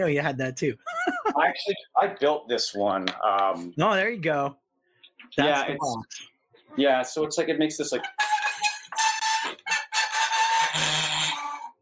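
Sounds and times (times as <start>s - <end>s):
speech: 0.0s - 4.6s, 5.2s - 8.3s
laughter: 0.8s - 1.7s
bowed self-built homemade instrument of springs and nails, unplugged: 8.1s - 11.8s.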